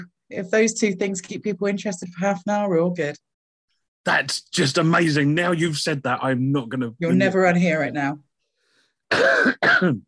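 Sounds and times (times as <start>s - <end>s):
speech: 0.0s - 3.3s, 4.0s - 8.3s, 9.1s - 10.0s
harsh coughs: 9.1s - 10.0s.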